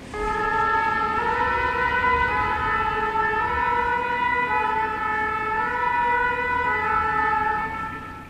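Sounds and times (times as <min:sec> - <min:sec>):
faint road noise: 0:00.0 - 0:08.2
fire engine siren wailing as it passes: 0:00.0 - 0:08.2.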